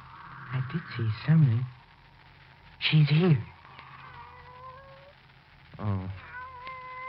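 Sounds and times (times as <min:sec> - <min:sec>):
low hum: 0:00.0 - 0:07.0
speech: 0:00.5 - 0:01.8, 0:02.8 - 0:03.5
pet cat meowing: 0:03.8 - 0:05.2, 0:06.2 - 0:07.0.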